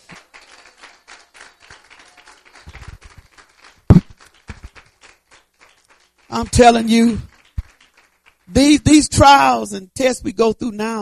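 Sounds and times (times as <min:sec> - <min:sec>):
audience clapping for the Lord: 0:00.0 - 0:09.6
scattered percussive taps: 0:03.9 - 0:04.7
speech: 0:06.4 - 0:07.3, 0:08.6 - 0:11.0.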